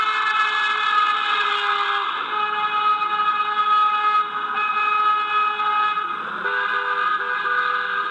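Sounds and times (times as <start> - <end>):
car horns honking from passing cars: 0.0 - 8.1.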